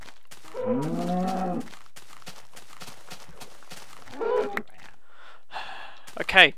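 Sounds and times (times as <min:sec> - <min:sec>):
faint tapping footsteps: 0:00.0 - 0:05.0, 0:05.9 - 0:06.5
video game cow mooing: 0:00.5 - 0:01.7, 0:04.1 - 0:04.6
speech: 0:00.6 - 0:01.7, 0:06.4 - 0:06.5.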